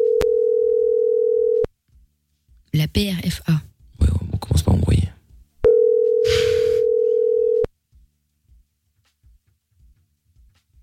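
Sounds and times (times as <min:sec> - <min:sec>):
telephone dial tone: 0:00.0 - 0:01.7, 0:05.7 - 0:07.7
speech: 0:02.8 - 0:04.2.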